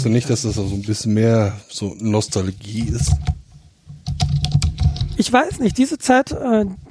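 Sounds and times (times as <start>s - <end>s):
speech: 0.0s - 3.4s, 5.2s - 6.8s
typing on a vintage Apple keyboard: 4.0s - 5.3s.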